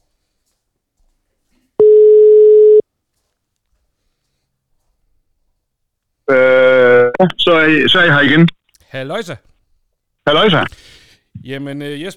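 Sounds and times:
telephone ringback tone on an outgoing call: 1.8s - 2.8s
speech: 7.2s - 9.5s, 10.3s - 12.1s.

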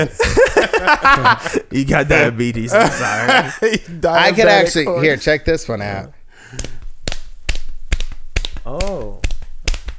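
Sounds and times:
laughter: 0.0s - 5.1s
speech: 0.0s - 6.7s
sharp clicks imitating horse hoofbeats: 6.4s - 9.9s.

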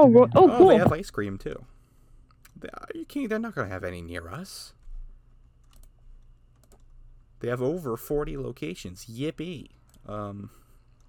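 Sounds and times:
speech: 0.0s - 1.8s, 2.6s - 4.8s, 7.4s - 10.6s
low steady hum: 0.0s - 11.0s
typing on a computer keyboard: 5.6s - 7.0s.

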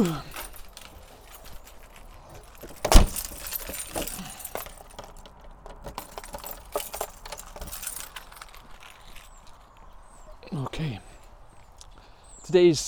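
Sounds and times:
speech: 0.0s - 0.3s, 12.5s - 12.8s
door lock being worked with a sharp metallic clack: 0.0s - 8.6s
keys jangling while unlocking a door: 0.0s - 9.4s.

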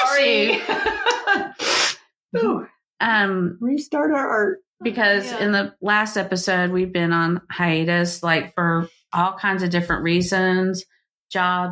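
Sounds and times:
laughter: 0.0s - 1.6s
speech: 0.2s - 0.8s, 2.3s - 11.6s
person sneezing: 1.5s - 2.6s.

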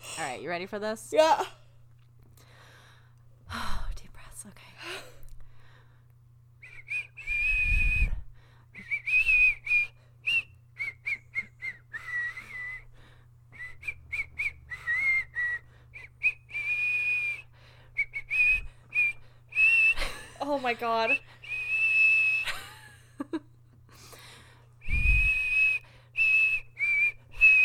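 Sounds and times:
low steady hum: 0.0s - 27.6s
speech: 0.2s - 1.6s, 20.8s - 21.3s
person whistling a wandering melody of high airy notes: 6.6s - 8.2s, 8.8s - 12.9s, 13.5s - 20.2s, 21.4s - 22.6s, 24.8s - 27.6s.

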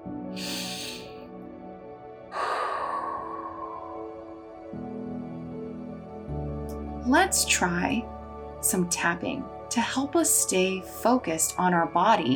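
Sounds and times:
soft sustained drone: 0.1s - 7.2s
deep breath in and out: 0.4s - 1.3s, 2.2s - 5.5s
speech: 7.1s - 12.3s.

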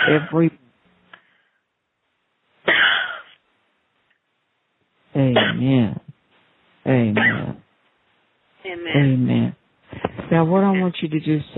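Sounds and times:
deep deliberate coughing during a prayer session: 0.0s - 0.5s, 2.7s - 3.4s, 5.3s - 5.9s, 7.0s - 7.6s
speech: 0.1s - 0.6s, 5.2s - 6.0s, 6.8s - 7.6s, 8.6s - 11.5s.

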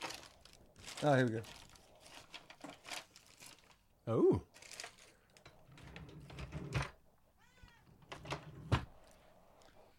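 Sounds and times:
rustling handling noises: 0.0s - 3.9s, 4.5s - 6.5s
speech: 1.0s - 1.6s, 4.0s - 4.5s
cat giving a short meow: 7.4s - 7.9s.

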